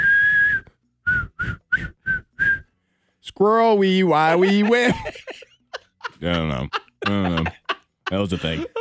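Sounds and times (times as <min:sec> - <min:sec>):
whistled tune played in reverse: 0:00.0 - 0:02.8
speech: 0:03.4 - 0:05.3, 0:06.2 - 0:08.7
laughter: 0:04.2 - 0:08.7.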